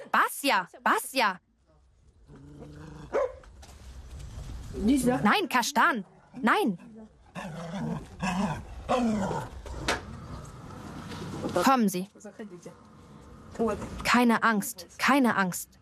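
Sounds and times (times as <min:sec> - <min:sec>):
speech: 0:00.4 - 0:01.5, 0:04.7 - 0:10.0, 0:11.4 - 0:12.9, 0:13.5 - 0:15.7
dog growling: 0:02.2 - 0:03.2, 0:07.2 - 0:10.5
dog barking sharply: 0:03.1 - 0:03.5.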